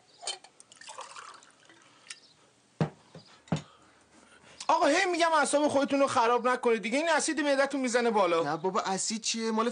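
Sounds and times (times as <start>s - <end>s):
water dripping: 0.3s - 2.2s
water being poured into a glass: 0.6s - 2.2s
speech: 4.7s - 9.7s.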